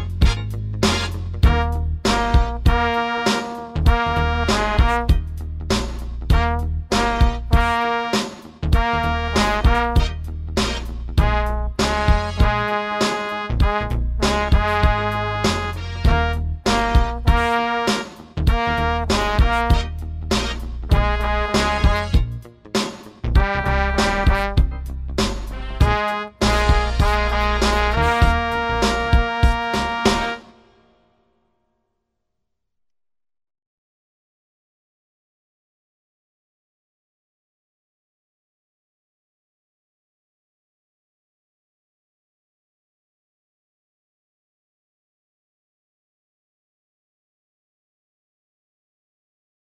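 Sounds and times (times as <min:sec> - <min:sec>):
tenor horn note shuffle: 0:00.2 - 0:05.3, 0:06.3 - 0:22.4, 0:23.4 - 0:30.9.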